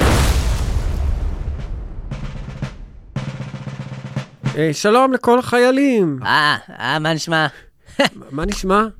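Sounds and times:
missile explosion blast: 0:00.0 - 0:03.2
speech: 0:04.6 - 0:08.9.

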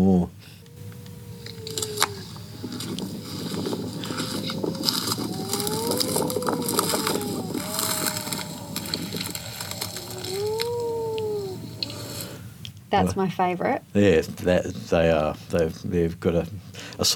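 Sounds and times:
wedge-tailed shearwater moaning calls during the day: 0:00.0 - 0:12.5
scattered clicks: 0:00.6 - 0:12.3
speech: 0:12.9 - 0:17.1.

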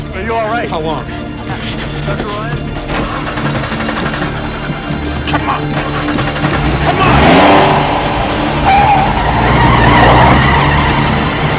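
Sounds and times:
speech: 0:00.2 - 0:03.0, 0:05.3 - 0:07.1
car engine roaring: 0:01.1 - 0:11.5
car tires skidding and squealing during a car chase: 0:02.9 - 0:11.5.

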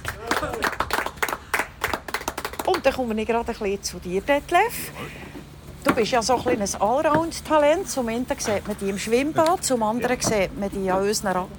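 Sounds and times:
small audience applauding: 0:00.0 - 0:02.8
speech: 0:02.8 - 0:11.5.

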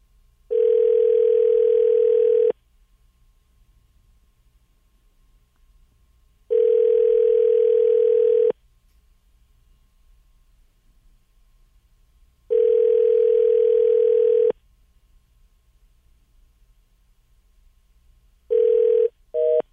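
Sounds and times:
phone ringback tones: 0:00.5 - 0:02.6, 0:06.5 - 0:08.6, 0:12.5 - 0:14.6, 0:18.5 - 0:19.6.

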